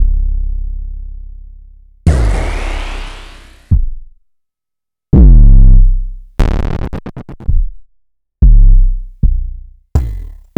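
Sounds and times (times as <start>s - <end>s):
kick drum: 2.1s - 3.0s, 5.2s - 6.5s, 8.4s - 10.5s.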